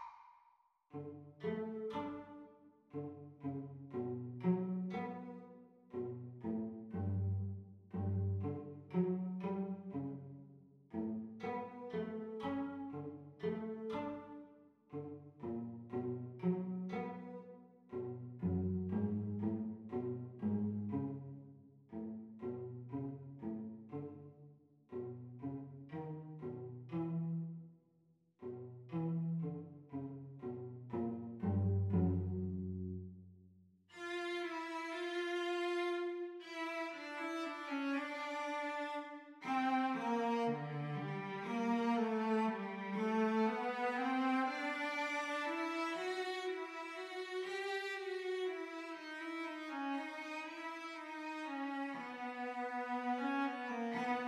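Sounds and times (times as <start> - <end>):
cello duet playalong: 0.9 - 27.6, 28.4 - 33.1, 33.9 - 54.2.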